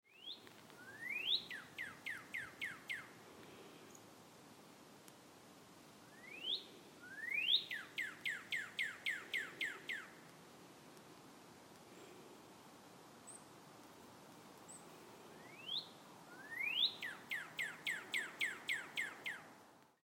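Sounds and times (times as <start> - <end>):
cardinal bird singing: 0.1 - 3.2, 6.1 - 10.2, 15.4 - 19.5.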